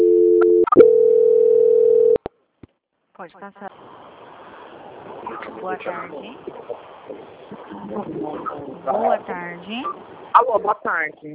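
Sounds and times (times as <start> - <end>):
telephone line tone during a call transfer: 0.0 - 2.2
speech: 3.2 - 3.7, 5.5 - 11.3.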